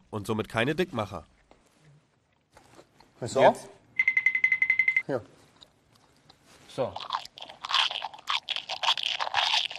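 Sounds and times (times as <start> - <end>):
speech: 0.1 - 1.4, 3.2 - 3.8, 5.1 - 5.4, 6.8 - 7.1
person biting into and chewing crispy French fries: 6.7 - 9.7.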